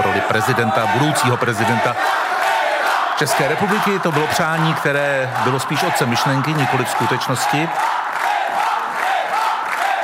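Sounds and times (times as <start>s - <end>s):
crowd chanting a name at an election-night celebration in the Czech Republic: 0.0s - 10.0s
speech: 0.3s - 2.2s, 3.2s - 8.0s.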